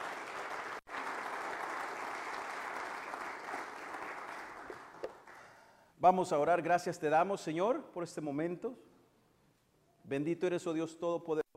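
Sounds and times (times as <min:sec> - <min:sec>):
church audience applauding in thanksgiving: 0:00.0 - 0:05.6
speech: 0:06.0 - 0:08.9, 0:10.1 - 0:11.4.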